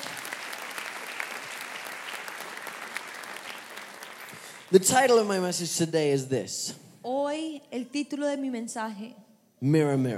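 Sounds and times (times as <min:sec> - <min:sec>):
large crowd applauding: 0:00.0 - 0:05.3
speech: 0:04.7 - 0:10.1.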